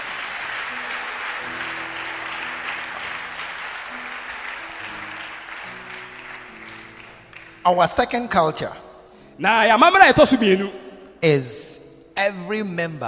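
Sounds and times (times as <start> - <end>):
audience clapping: 0.0 - 8.4
speech: 7.6 - 8.8, 9.4 - 13.0.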